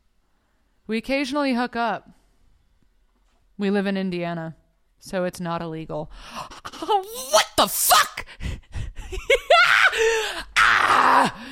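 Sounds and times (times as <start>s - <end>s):
speech: 0.9s - 2.2s, 3.6s - 8.5s, 9.1s - 11.5s
person screaming in disbelief: 6.7s - 8.3s, 9.4s - 11.5s.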